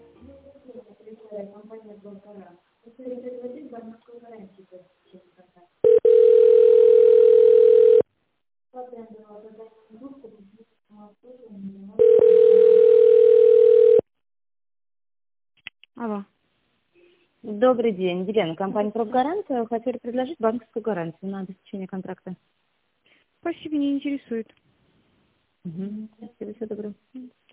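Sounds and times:
speech: 0:01.4 - 0:05.0, 0:17.8 - 0:22.6, 0:23.4 - 0:24.6, 0:25.6 - 0:27.4
telephone ringback tone while waiting for an operator: 0:05.8 - 0:08.0, 0:12.0 - 0:14.0.

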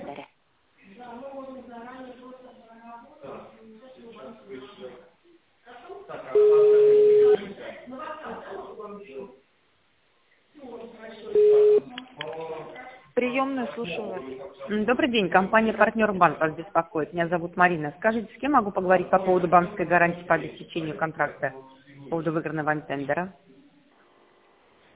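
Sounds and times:
recorded voice on a company's phone line, narrow and tinny: 0:06.3 - 0:07.4, 0:11.3 - 0:11.9
loud steady telephone ringing tone: 0:06.4 - 0:07.4, 0:11.4 - 0:11.8
speech: 0:13.8 - 0:23.5.

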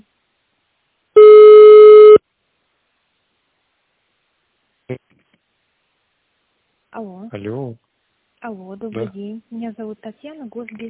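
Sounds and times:
telephone line tone while a call is transferred: 0:01.2 - 0:02.2
speech: 0:07.0 - 0:10.8.

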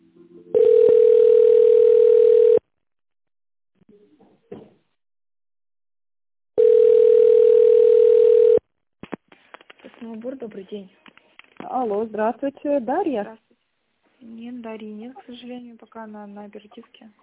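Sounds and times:
telephone ringback tone while a call is being transferred: 0:00.5 - 0:02.6, 0:06.6 - 0:08.6
speech: 0:10.4 - 0:11.1, 0:11.7 - 0:13.4, 0:14.3 - 0:17.2.

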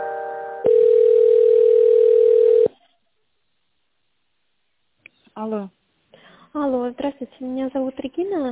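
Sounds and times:
telephone line tone while a call is being transferred: 0:00.6 - 0:02.7
speech: 0:06.9 - 0:08.4.

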